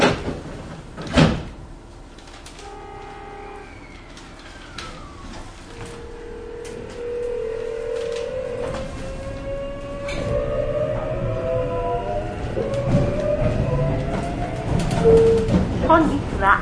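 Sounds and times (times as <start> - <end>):
train doors sliding shut with a thump: 0.0 - 16.3
low hum and rising electric whine of a one-man-operated train carriage: 2.1 - 16.5.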